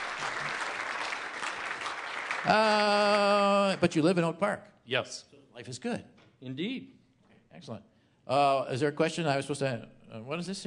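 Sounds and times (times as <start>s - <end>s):
audience applause: 0.0s - 4.1s
speech: 2.4s - 10.6s.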